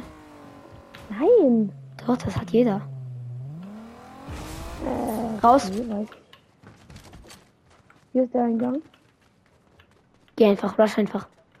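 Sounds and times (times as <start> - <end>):
car engine revving and pulling away: 0.0 - 6.2
speech: 1.1 - 2.9, 4.9 - 6.2, 8.2 - 8.9, 10.4 - 11.3.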